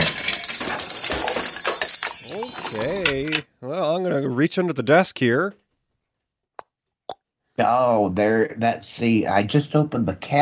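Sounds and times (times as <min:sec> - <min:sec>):
loose coins jingling in a shaken bag: 0:00.0 - 0:03.4
speech: 0:02.7 - 0:05.6, 0:07.6 - 0:10.4.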